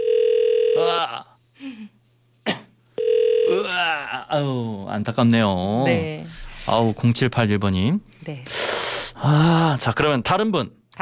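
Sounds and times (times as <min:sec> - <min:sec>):
telephone ringback tone of an unanswered call: 0:00.0 - 0:00.8, 0:03.0 - 0:03.6
speech: 0:04.3 - 0:08.6, 0:09.2 - 0:11.0.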